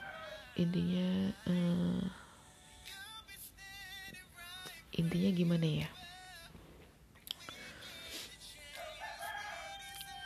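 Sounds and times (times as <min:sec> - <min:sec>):
rooster crowing: 0:00.0 - 0:00.7, 0:08.7 - 0:10.2
speech: 0:00.6 - 0:02.2, 0:05.0 - 0:06.0.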